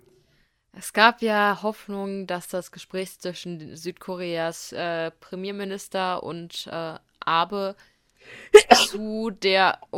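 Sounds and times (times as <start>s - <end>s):
speech: 0.8s - 9.9s
person sneezing: 8.4s - 9.0s.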